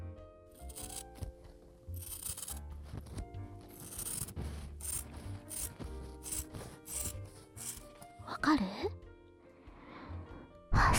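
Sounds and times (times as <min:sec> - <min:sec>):
scissors cutting fabric: 0:00.6 - 0:08.3
speech: 0:08.4 - 0:09.0.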